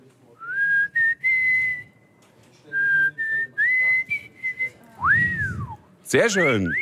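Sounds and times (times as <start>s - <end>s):
person whistling a melody: 0.4s - 2.0s, 2.8s - 5.8s
speech: 6.1s - 6.8s.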